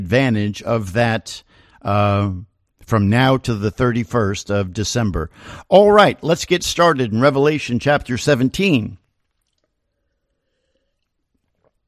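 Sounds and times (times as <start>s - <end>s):
speech: 0.0s - 9.0s
sipping water: 8.6s - 11.8s
gulp of water: 9.0s - 11.8s.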